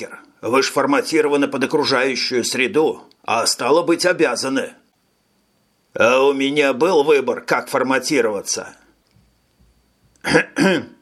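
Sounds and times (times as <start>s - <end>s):
speech: 0.0s - 4.8s, 6.0s - 8.8s, 10.2s - 11.0s
person clearing throat cautiously: 10.2s - 11.0s.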